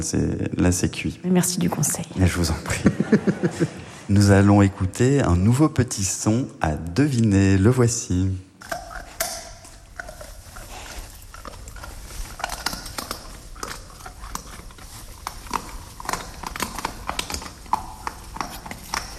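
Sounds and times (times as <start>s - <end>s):
speech: 0.0s - 8.8s
laughter: 2.7s - 4.1s
wild boar cracking and chewing acorns: 8.6s - 19.1s.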